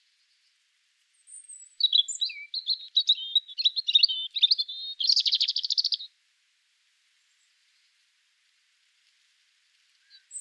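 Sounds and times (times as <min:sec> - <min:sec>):
European Robin singing: 0:01.3 - 0:06.1.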